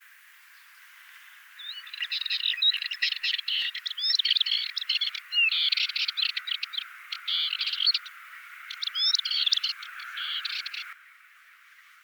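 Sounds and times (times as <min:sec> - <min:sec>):
Dartford warbler: 0:01.6 - 0:11.0.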